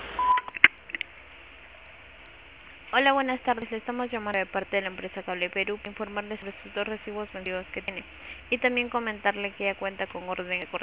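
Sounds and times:
voicemail beep over a phone line: 0:00.2 - 0:00.6
speech: 0:02.9 - 0:10.8.

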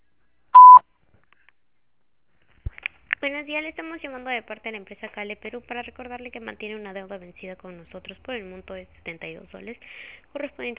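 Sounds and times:
voicemail recording tone beep: 0:00.6 - 0:00.8
speech: 0:03.2 - 0:10.7.

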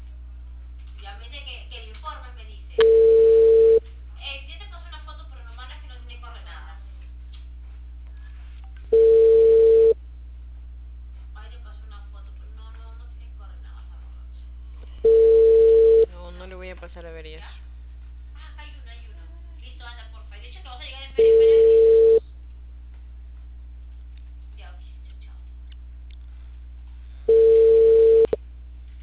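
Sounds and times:
telephone tone while placing a call: 0:02.8 - 0:03.8, 0:08.9 - 0:10.0, 0:15.1 - 0:16.1, 0:21.2 - 0:22.2, 0:27.3 - 0:28.4.

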